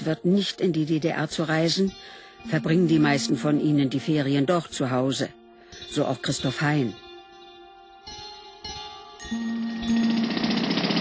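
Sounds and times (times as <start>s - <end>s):
speech: 0.0s - 7.0s, 9.3s - 9.6s
jackhammer drilling a trench in a street: 9.6s - 10.9s.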